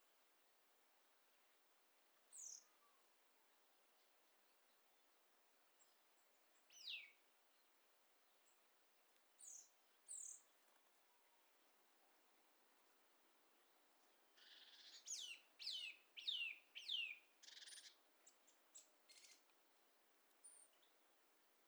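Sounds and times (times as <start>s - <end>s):
Eurasian nuthatch Sitta europaea calling: 14.4s - 18.0s.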